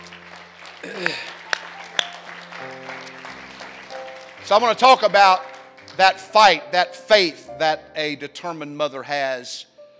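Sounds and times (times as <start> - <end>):
sharp loud claps: 0.0 - 6.2
audience applause: 0.0 - 6.4
speech: 0.8 - 1.4, 4.5 - 9.7.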